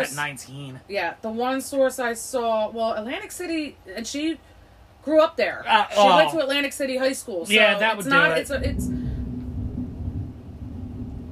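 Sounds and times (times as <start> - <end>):
speech: 0.0 - 9.1
thunder rumbling: 8.3 - 11.2.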